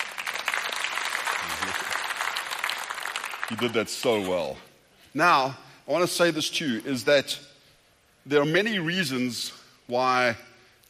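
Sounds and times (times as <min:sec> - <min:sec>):
sustained applause from a crowd: 0:00.0 - 0:03.8
speech: 0:03.5 - 0:07.5, 0:08.2 - 0:10.8.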